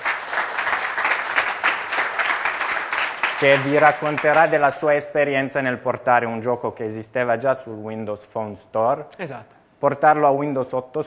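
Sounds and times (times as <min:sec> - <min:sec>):
audience applause at a developer talk: 0:00.0 - 0:04.7
speech: 0:03.4 - 0:11.0.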